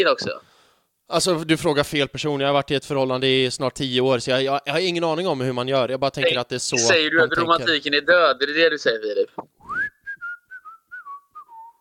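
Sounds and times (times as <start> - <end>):
speech: 0.0 - 0.5, 1.1 - 9.5
person whistling a short wavering tune: 9.6 - 11.7.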